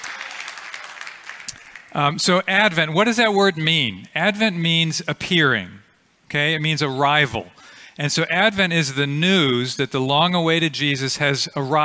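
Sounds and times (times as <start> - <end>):
audience clapping in a decorated auditorium: 0.0 - 2.0
speech: 2.0 - 11.8.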